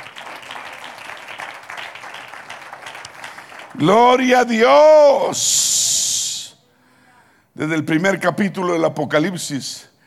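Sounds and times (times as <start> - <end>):
crowd applauding: 0.0 - 4.0
speech: 3.8 - 5.9, 7.6 - 9.9.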